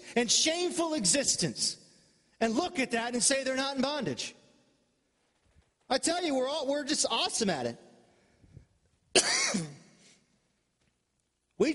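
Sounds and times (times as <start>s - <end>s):
speech: 0.2s - 1.8s, 2.4s - 4.4s, 5.9s - 7.8s, 9.2s - 9.7s, 11.6s - 11.7s
harsh cough: 9.1s - 10.0s
raspy throat-clearing rumble: 9.2s - 9.9s.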